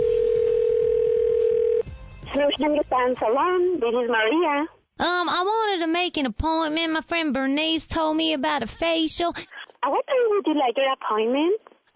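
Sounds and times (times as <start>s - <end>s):
steady unbroken telephone dial tone: 0.0s - 1.8s
speech: 2.4s - 11.7s.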